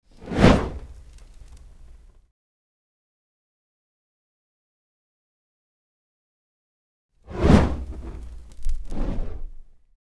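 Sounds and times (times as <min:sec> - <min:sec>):
fire flame whoosh: 0:00.1 - 0:02.1, 0:07.3 - 0:09.8.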